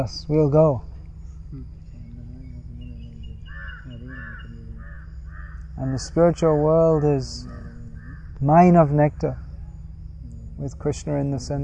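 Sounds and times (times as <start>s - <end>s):
speech: 0.0s - 0.9s, 1.5s - 1.7s, 5.8s - 7.6s, 8.4s - 9.4s, 10.6s - 11.6s
faint murmuring calls: 0.0s - 11.6s
steady low hum: 0.0s - 11.6s
crows cawing: 2.8s - 8.4s.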